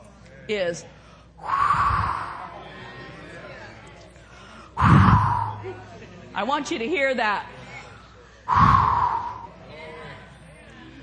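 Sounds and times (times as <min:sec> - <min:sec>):
speech: 0:00.5 - 0:01.8, 0:05.6 - 0:07.5, 0:08.5 - 0:08.8
breathy whooshes blown into a microphone imitating wind: 0:01.4 - 0:02.6, 0:04.5 - 0:05.8, 0:08.5 - 0:09.6.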